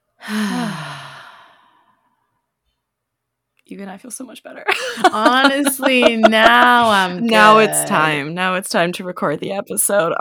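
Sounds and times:
person exhaling through the mouth during a breathing exercise: 0.2s - 1.9s
speech: 3.7s - 10.2s
laughter: 4.7s - 8.2s.

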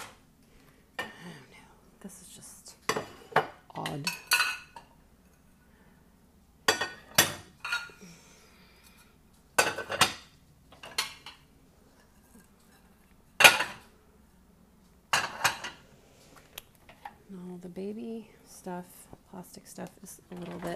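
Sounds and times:
speech: 2.0s - 2.6s, 3.9s - 4.2s, 17.7s - 20.7s
dishes and silverware clinking while unloading a dishwasher: 2.9s - 5.5s, 6.7s - 8.0s, 9.6s - 11.4s, 12.0s - 13.9s, 15.1s - 15.8s.

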